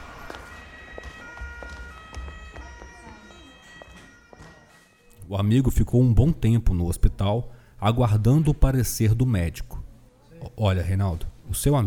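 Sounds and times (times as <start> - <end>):
ambulance siren: 0.0 - 5.2
speech: 5.3 - 9.8, 10.4 - 11.8.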